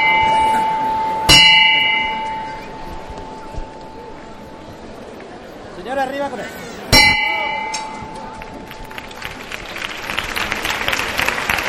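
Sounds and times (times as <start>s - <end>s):
loud bell on a procession float clanging: 0.0s - 4.3s, 7.0s - 8.4s
murmur of a large outdoor crowd: 0.0s - 11.6s
scattered applause: 8.1s - 11.6s.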